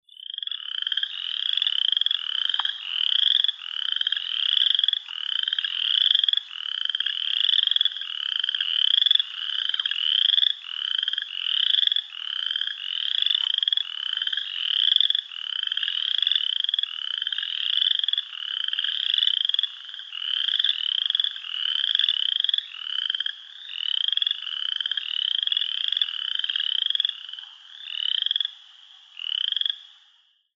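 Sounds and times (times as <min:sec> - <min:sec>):
Midland Chorus Frog calling: 0:00.0 - 0:30.5.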